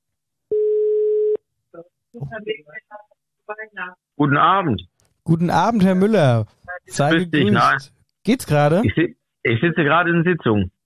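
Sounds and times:
telephone ringback tone while a call is placed: 0:00.5 - 0:01.4
speech: 0:02.1 - 0:10.8.

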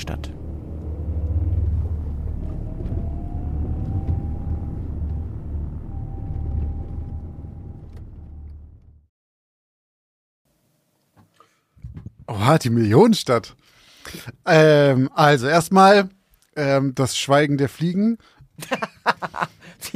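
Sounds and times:
speech: 0:00.0 - 0:00.4, 0:12.5 - 0:19.9
van engine starting and driving off: 0:00.0 - 0:09.0
laughter: 0:18.6 - 0:19.6.

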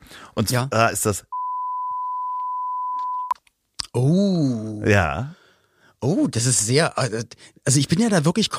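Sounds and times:
speech: 0:00.4 - 0:01.4, 0:04.8 - 0:05.4, 0:06.0 - 0:08.5
censor beep over a phone number: 0:01.3 - 0:03.4.

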